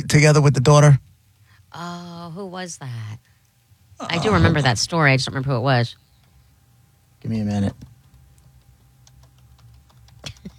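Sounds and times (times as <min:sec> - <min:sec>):
speech: 0:00.0 - 0:01.1, 0:01.7 - 0:03.3, 0:04.0 - 0:06.0, 0:07.2 - 0:07.9
low steady hum: 0:00.0 - 0:10.5
typing on computer keyboard keys: 0:07.8 - 0:10.5.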